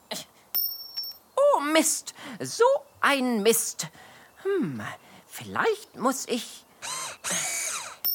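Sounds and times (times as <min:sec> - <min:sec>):
metallic clinks and knocks from fumbling with a screw against metal hardware: 0:00.5 - 0:01.2
faint tinkle: 0:00.5 - 0:01.3
speech: 0:01.8 - 0:07.5.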